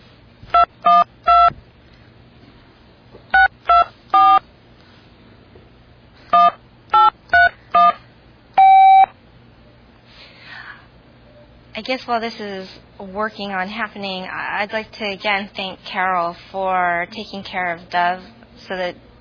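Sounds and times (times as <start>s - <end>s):
faint low hum: 0.0s - 19.1s
mobile phone dialing tones struggling to get a signal: 0.6s - 1.5s, 3.4s - 4.4s, 6.4s - 8.0s, 8.6s - 9.1s
speech: 11.8s - 19.1s.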